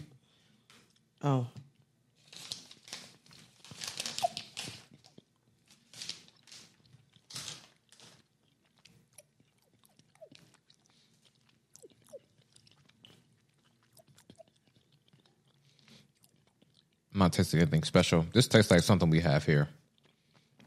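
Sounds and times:
crunching and chewing of a citrus, lemon and rose flavored candy: 0:00.5 - 0:17.4, 0:19.5 - 0:20.6
speech: 0:01.2 - 0:01.6, 0:17.3 - 0:19.8
small clicks while chewing candy: 0:08.9 - 0:17.0.

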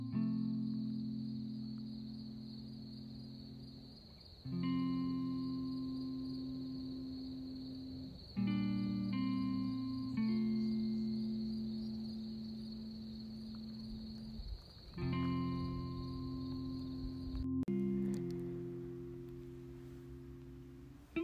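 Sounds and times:
steady continuous cricket trill: 0:00.0 - 0:21.2
low sustained humming drone: 0:04.6 - 0:21.2.

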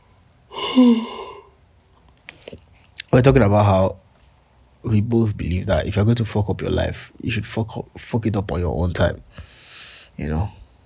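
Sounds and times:
person yawning: 0:00.5 - 0:01.5
speech: 0:00.8 - 0:01.2, 0:03.2 - 0:04.0, 0:04.8 - 0:09.5, 0:10.2 - 0:10.6.

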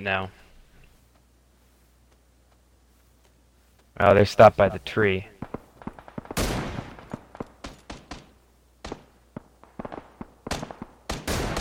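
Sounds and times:
speech: 0:00.0 - 0:00.4, 0:04.0 - 0:05.3
bursts of gunfire to the north: 0:05.3 - 0:11.5.

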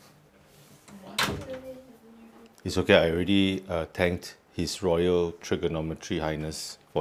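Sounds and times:
door shutting with a thud: 0:01.2 - 0:01.6
speech: 0:02.6 - 0:06.9.

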